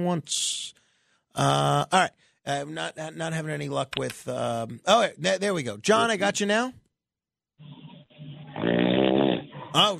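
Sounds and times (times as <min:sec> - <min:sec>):
speech: 0:00.0 - 0:00.8, 0:01.4 - 0:06.8, 0:09.7 - 0:09.9
person snoring: 0:08.4 - 0:09.8.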